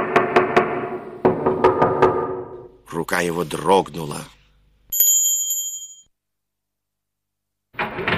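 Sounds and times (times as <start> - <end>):
knocking on a door: 0.0 - 2.6
speech: 3.0 - 4.4.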